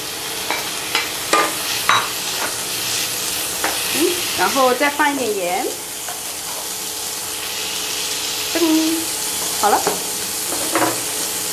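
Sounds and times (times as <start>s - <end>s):
food sizzling in a hot pan while stir-frying: 0.0s - 11.5s
speech: 4.4s - 5.8s, 8.6s - 10.1s.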